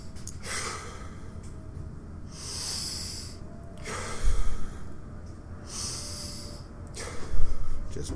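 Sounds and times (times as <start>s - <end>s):
slow deep breaths: 0.3s - 1.5s, 2.2s - 8.0s
speech: 8.0s - 8.1s.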